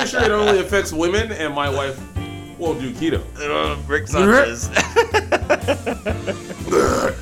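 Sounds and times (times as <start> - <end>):
laughter: 0.0 - 0.9, 4.5 - 7.0
speech: 0.1 - 5.0, 5.6 - 7.2
short throaty hiccups: 6.6 - 7.2.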